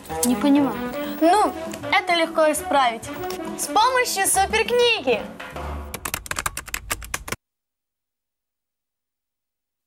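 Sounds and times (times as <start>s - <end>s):
speech: 0.1s - 5.6s
keyboard keystrokes clicking as a keyword is typed: 5.9s - 7.4s.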